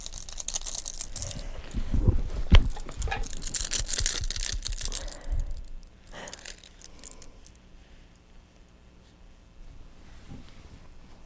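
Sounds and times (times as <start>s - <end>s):
bunch of keys jangling: 0.0s - 1.5s, 2.7s - 7.4s.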